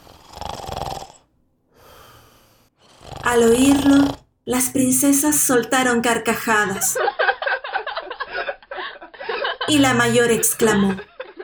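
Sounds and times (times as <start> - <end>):
person lying in bed fake snoring: 0.0 - 4.3
speech: 3.3 - 7.2, 9.7 - 11.1
laughter: 7.0 - 11.4.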